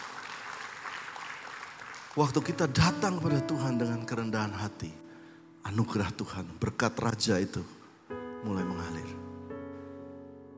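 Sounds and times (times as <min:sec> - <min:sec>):
crowd applauding: 0:00.0 - 0:03.0
speech: 0:02.2 - 0:05.0, 0:05.6 - 0:07.8, 0:08.4 - 0:09.2.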